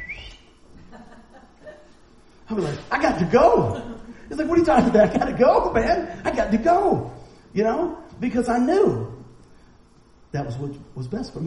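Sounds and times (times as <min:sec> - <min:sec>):
voice imitating a father's shrill whistle calling his child home: 0:00.0 - 0:00.5
laughter: 0:00.8 - 0:02.0, 0:03.4 - 0:06.4
speech: 0:02.5 - 0:09.1, 0:10.3 - 0:11.4.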